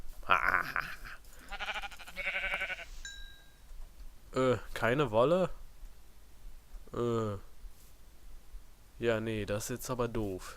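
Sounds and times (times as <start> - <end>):
sheep bleating: 0.4 - 3.0
speech: 0.6 - 1.0, 4.4 - 5.6, 6.9 - 7.5, 9.0 - 10.5
faint high chime: 2.9 - 3.7.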